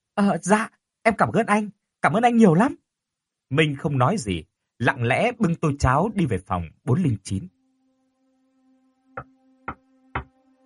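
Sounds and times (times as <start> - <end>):
speech: 0.2 - 2.8, 3.5 - 7.6
light knocking on an old soft wooden door: 9.7 - 10.3.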